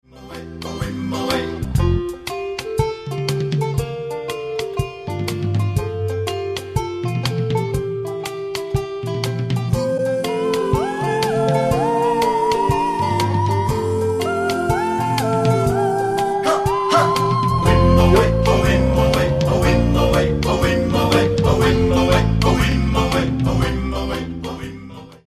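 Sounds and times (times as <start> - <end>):
professional wedding backing music: 0.3 - 24.8.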